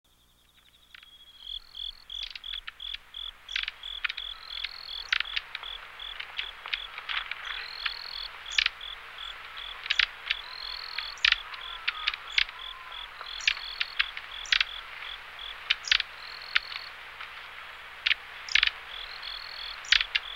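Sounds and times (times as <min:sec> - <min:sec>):
long-tailed tit calling: 0:00.1 - 0:20.3.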